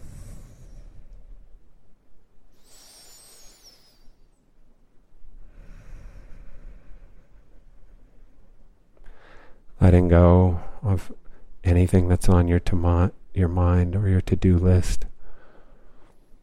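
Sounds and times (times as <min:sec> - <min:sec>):
deep slow breaths during a guided meditation: 0:00.0 - 0:04.5, 0:05.1 - 0:09.8, 0:15.2 - 0:16.4
speech: 0:09.9 - 0:15.1.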